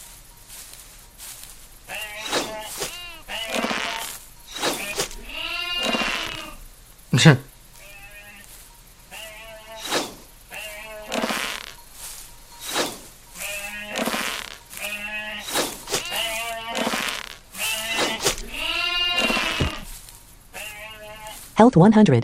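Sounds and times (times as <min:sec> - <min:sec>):
sheep bleating: 0:01.9 - 0:04.2, 0:04.8 - 0:06.6, 0:07.8 - 0:08.5, 0:09.1 - 0:09.9, 0:10.5 - 0:11.8, 0:13.4 - 0:19.9, 0:20.5 - 0:21.5
speech: 0:07.2 - 0:07.5, 0:21.8 - 0:22.2.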